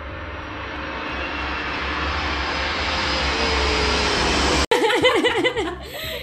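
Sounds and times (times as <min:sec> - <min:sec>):
jet aircraft roaring overhead: 0:00.0 - 0:04.7
people laughing: 0:04.7 - 0:06.2.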